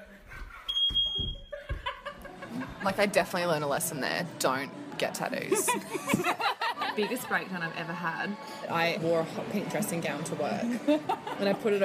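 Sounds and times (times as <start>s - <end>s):
house smoke alarm beeping, set off by cooking pancakes: 0.7s - 1.6s
people laughing: 1.5s - 3.1s, 5.5s - 7.8s, 10.6s - 11.8s
speech: 2.8s - 11.8s.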